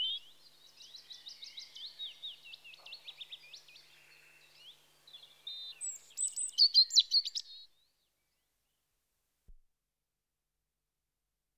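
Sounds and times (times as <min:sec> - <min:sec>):
European robin Erithacus rubecula singing in spring: 0:00.0 - 0:07.6.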